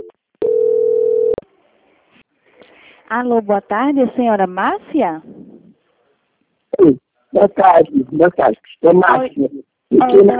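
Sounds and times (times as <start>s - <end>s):
telephone line tone during a call transfer: 0.0s - 1.4s
speech: 3.1s - 5.4s, 6.8s - 10.3s.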